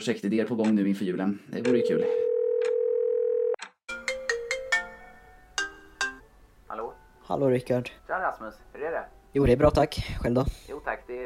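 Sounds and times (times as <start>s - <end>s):
speech: 0.0s - 2.3s, 7.3s - 11.2s
telephone dialing beeps while placing a call: 1.7s - 3.0s
telephone dial tone: 1.7s - 3.6s.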